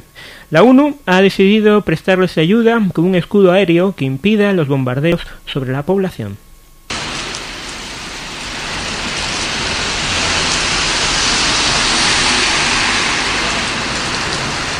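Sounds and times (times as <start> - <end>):
speech: 0.5 - 6.4
rain falling on a city street: 6.9 - 14.7.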